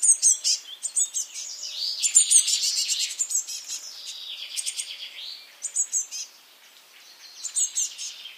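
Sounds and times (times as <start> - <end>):
Eurasian blue tit Cyanistes caeruleus calling: 0.0 - 8.3.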